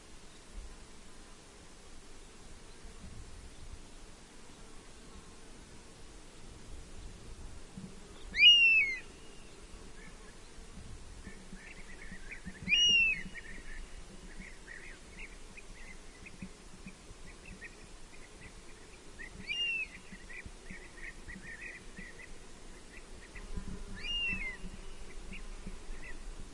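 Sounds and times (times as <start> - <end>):
quiet background noise: 0.0 - 26.5
European honey buzzard plaintive whistles: 8.4 - 9.1, 12.7 - 13.3.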